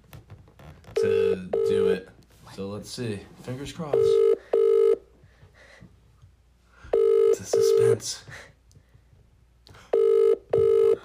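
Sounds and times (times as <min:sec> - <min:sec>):
outgoing phone call ringing tone: 0:01.0 - 0:02.0, 0:03.9 - 0:05.0, 0:06.9 - 0:08.0, 0:09.9 - 0:11.0
speech: 0:01.9 - 0:04.4.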